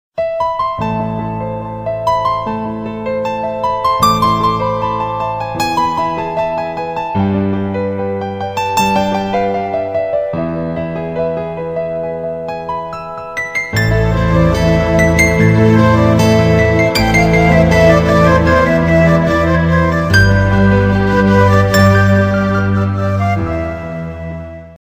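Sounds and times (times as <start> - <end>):
romantic piano tone: 0.2 - 24.7.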